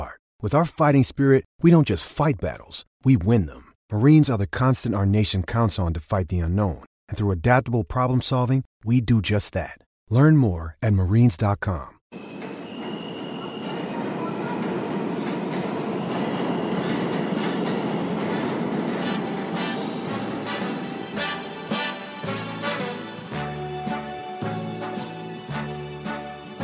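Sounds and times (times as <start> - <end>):
speech: 0.4 - 12.3
subway train rumbling along the rails: 12.1 - 23.0
pulsing low tonal whines: 12.2 - 21.7.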